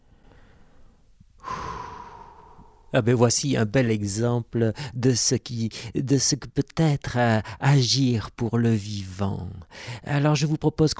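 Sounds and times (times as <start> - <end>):
slow deep breath with strong exhale: 0.1 - 3.0
speech: 2.9 - 10.9.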